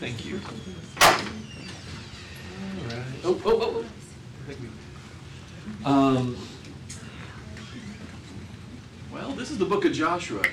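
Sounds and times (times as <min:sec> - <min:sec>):
speech: 0:00.0 - 0:01.4, 0:02.6 - 0:04.9, 0:05.7 - 0:06.5, 0:09.4 - 0:10.5
door shutting with a thud: 0:01.0 - 0:01.4.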